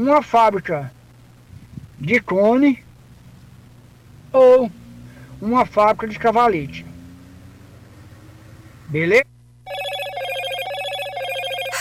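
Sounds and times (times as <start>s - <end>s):
speech: 0.0s - 1.0s, 2.0s - 2.8s, 4.3s - 4.8s, 5.4s - 6.9s, 8.9s - 9.3s
telephone ringing with bright trilling electronic tone: 9.6s - 11.7s.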